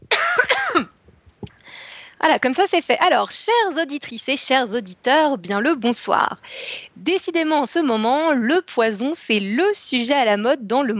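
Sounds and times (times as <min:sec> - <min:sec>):
woman coughing: 0:00.1 - 0:00.9
breathy exhale: 0:01.6 - 0:02.2
speech: 0:02.2 - 0:10.9.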